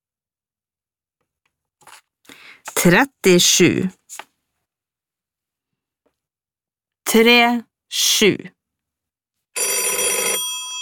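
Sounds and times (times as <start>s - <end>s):
speech: 2.8s - 4.0s, 7.1s - 8.6s
old-style telephone bell ringing: 9.6s - 10.8s.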